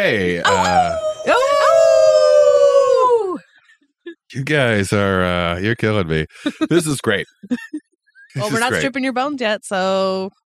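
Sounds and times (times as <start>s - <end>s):
speech: 0.0s - 1.4s, 4.3s - 10.4s
laughter: 0.0s - 1.6s, 4.4s - 9.0s
people howling like wolves: 0.0s - 3.4s.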